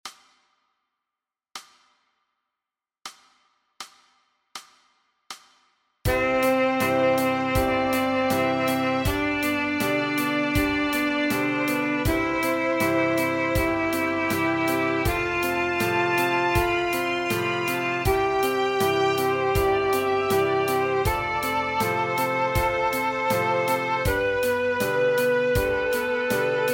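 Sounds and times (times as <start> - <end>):
musical scale: 6.1 - 26.7.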